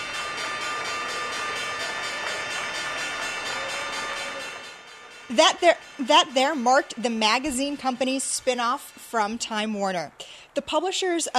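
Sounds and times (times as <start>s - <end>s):
stock exchange opening bell ringing: 0.0s - 8.5s
speech: 5.3s - 11.3s.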